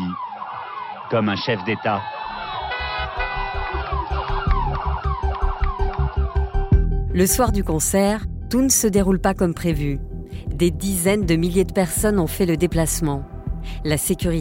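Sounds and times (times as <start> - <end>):
police sirens of a car convoy in Guinea wailing: 0.0 - 6.8
speech: 1.1 - 2.2, 7.2 - 14.4.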